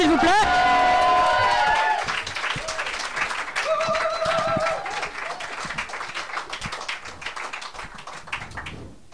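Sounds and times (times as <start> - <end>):
room full of people applauding: 0.0 - 8.8
audience whoops and whistles: 3.6 - 5.0.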